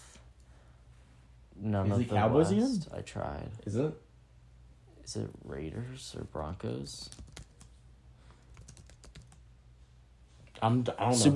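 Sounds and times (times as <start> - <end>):
low steady hum: 0.0 - 11.3
speech: 1.6 - 4.0, 5.1 - 7.4, 10.6 - 11.3
typing on a computer keyboard: 7.1 - 7.8, 8.4 - 9.4.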